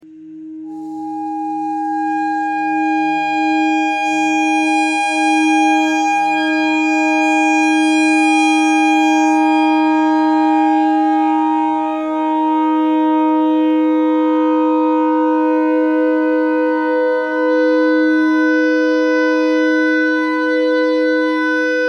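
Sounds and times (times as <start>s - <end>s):
E clarinet notes: 0.7s - 21.7s.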